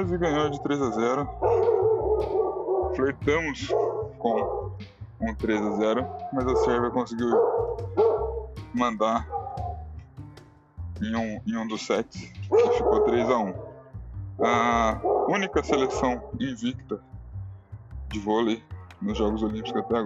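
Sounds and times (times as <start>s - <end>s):
dog barking on a street: 0.0s - 4.8s, 5.4s - 9.9s, 12.5s - 16.5s, 19.5s - 20.0s
speech: 0.0s - 8.1s, 8.7s - 9.4s, 11.0s - 13.7s, 14.4s - 17.1s, 18.1s - 20.0s.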